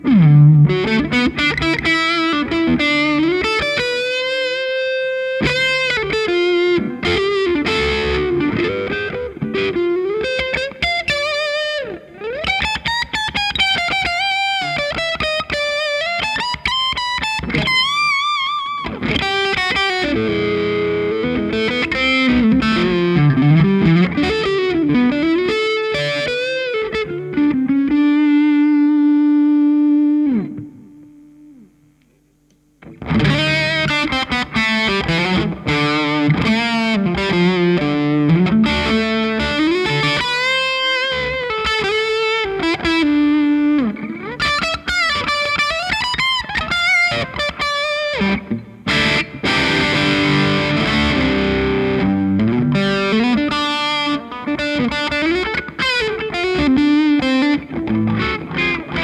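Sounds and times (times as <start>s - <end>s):
335 electric guitar through Peavey amp lead channel: 0.0s - 32.0s, 32.8s - 59.0s.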